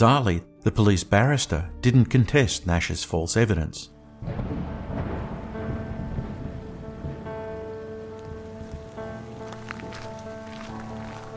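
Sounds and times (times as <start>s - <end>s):
speech: 0.0s - 4.7s
heavy rain falling on a river bank: 4.2s - 11.3s.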